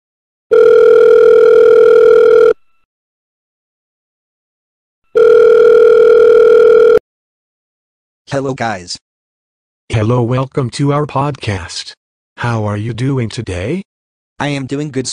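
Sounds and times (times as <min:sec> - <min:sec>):
telephone tone while a call is placed: 0:00.5 - 0:02.8, 0:05.1 - 0:07.0
speech: 0:08.3 - 0:09.0, 0:09.9 - 0:15.1.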